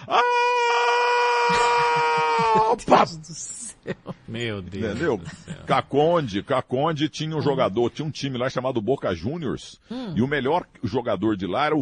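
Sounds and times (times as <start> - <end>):
voice imitating a high-pitched scream of a person passing along a road: 0.0 - 2.8
laughter: 1.4 - 5.9
speech: 2.7 - 11.7.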